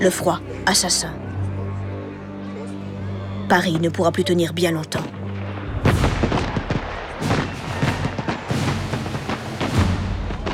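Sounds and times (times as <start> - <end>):
speech: 0.0 - 1.3, 3.5 - 5.2
rumbling echoes of shelling: 5.2 - 10.5
heavy Prussian cannon fire shelling a city: 5.3 - 10.5.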